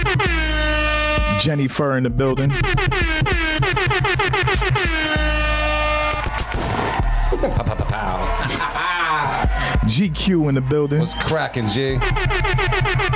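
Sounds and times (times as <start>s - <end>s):
air horn blasts: 0.0s - 6.4s, 11.9s - 13.1s
dense chaotic burst of horn-like noise: 0.0s - 7.3s, 9.3s - 13.1s
speech: 1.4s - 3.3s, 9.9s - 12.3s
laughter: 7.2s - 9.8s.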